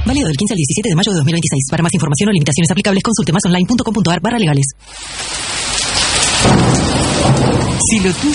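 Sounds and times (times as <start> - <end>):
speech: 0.1 - 5.2, 7.9 - 8.3
heavy rain pouring down: 4.8 - 8.3
deep rumble of thunder: 4.9 - 8.3.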